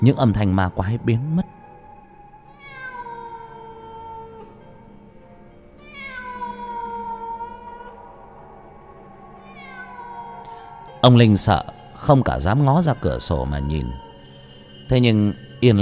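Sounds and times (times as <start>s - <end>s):
speech: 0.0s - 1.6s, 11.0s - 14.1s, 14.9s - 15.8s
cat meowing: 2.5s - 4.7s, 5.8s - 8.1s, 9.4s - 10.9s, 11.6s - 14.3s.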